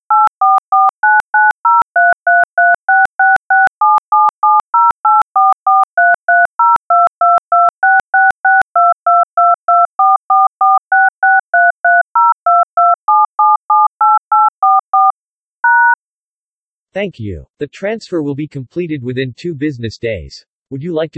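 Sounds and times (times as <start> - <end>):
touch-tone keypad beeps on a phone banking system: 0.1 - 16.0
speech: 17.0 - 21.1.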